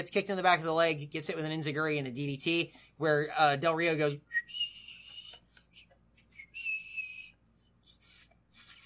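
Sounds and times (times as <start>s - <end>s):
speech: 0.0s - 4.6s
person attempting a thin high-pitched whistle: 4.3s - 7.4s.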